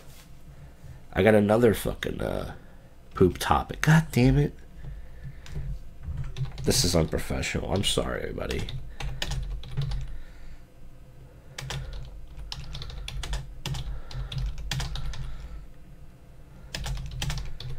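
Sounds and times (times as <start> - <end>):
steady low hum: 0.0 - 17.7
speech: 1.2 - 2.6, 3.2 - 4.6, 6.6 - 8.8
typing on a computer keyboard: 6.2 - 7.9, 8.5 - 10.1, 11.6 - 15.5, 16.7 - 17.7.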